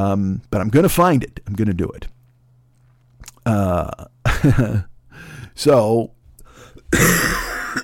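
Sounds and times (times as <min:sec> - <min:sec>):
speech: 0:00.0 - 0:02.2, 0:03.4 - 0:06.2, 0:06.9 - 0:07.4
harsh dry cough: 0:06.9 - 0:07.8.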